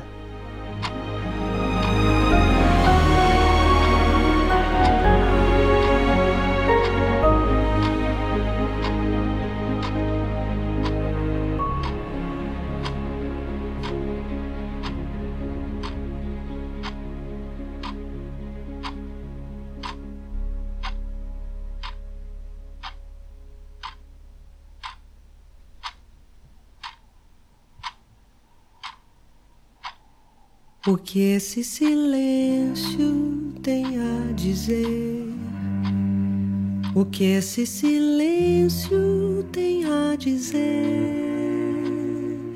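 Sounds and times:
clock ticking: 0:00.0 - 0:13.2, 0:13.8 - 0:14.0, 0:14.8 - 0:15.0, 0:15.8 - 0:16.0, 0:16.8 - 0:17.0, 0:17.8 - 0:18.0, 0:18.8 - 0:19.0, 0:19.8 - 0:20.0, 0:20.8 - 0:21.0, 0:21.8 - 0:22.0, 0:22.8 - 0:36.1, 0:36.8 - 0:42.2
low hum: 0:00.0 - 0:42.5
speech: 0:30.9 - 0:35.2, 0:37.0 - 0:41.6.

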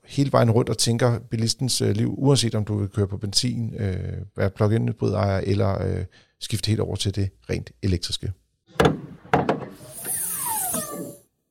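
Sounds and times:
speech: 0:00.2 - 0:08.9
car hood creaking and squealing as it lifts: 0:08.8 - 0:11.2.

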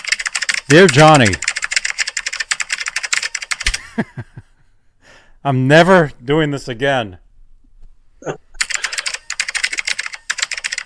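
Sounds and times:
person typing emails on a computer keyboard: 0:00.0 - 0:03.8, 0:08.6 - 0:10.8
speech: 0:00.7 - 0:01.4, 0:04.0 - 0:04.3, 0:05.4 - 0:07.2, 0:08.2 - 0:08.4
laughter: 0:03.7 - 0:04.5.

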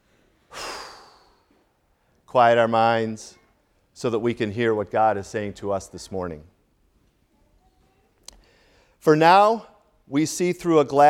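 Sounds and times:
deep breath before a scripture reading at a church service: 0:00.0 - 0:02.2, 0:08.3 - 0:09.0
speech: 0:02.3 - 0:03.4, 0:04.0 - 0:06.5, 0:09.0 - 0:11.0.

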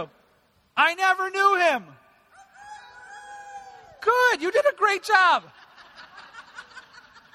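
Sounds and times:
speech: 0:00.0 - 0:00.2, 0:00.8 - 0:02.0, 0:04.0 - 0:05.6
volunteer imitating a rooster crowing: 0:02.3 - 0:04.0
laughter: 0:05.4 - 0:07.3.

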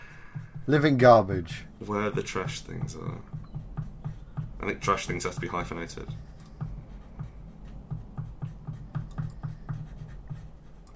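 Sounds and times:
low steady hum: 0:00.0 - 0:10.9
speech: 0:00.7 - 0:03.5, 0:04.6 - 0:06.3
pen scratching across paper: 0:03.7 - 0:10.9.

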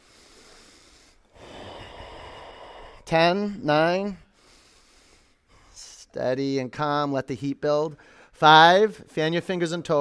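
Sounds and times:
forceful breathing through the nose: 0:00.0 - 0:03.1, 0:04.2 - 0:05.8
speech: 0:03.1 - 0:04.2, 0:06.1 - 0:09.9.

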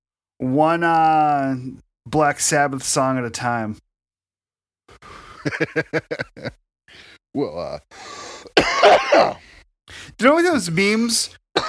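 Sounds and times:
speech: 0:00.4 - 0:03.8, 0:05.4 - 0:11.6
laughter: 0:05.0 - 0:06.6
loud rough throaty cough: 0:08.5 - 0:09.4.

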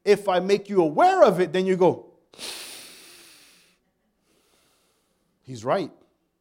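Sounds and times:
speech: 0:00.1 - 0:02.6, 0:05.5 - 0:06.0
deep breath in and out: 0:02.3 - 0:05.4.

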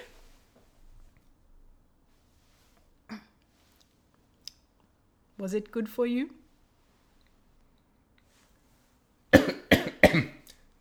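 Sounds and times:
speech: 0:05.4 - 0:06.4
person coughing to clear something caught in the throat: 0:09.4 - 0:10.5.

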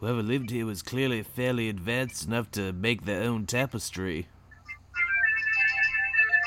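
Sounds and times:
speech: 0:00.0 - 0:04.4
phone ringtone: 0:04.5 - 0:06.4.

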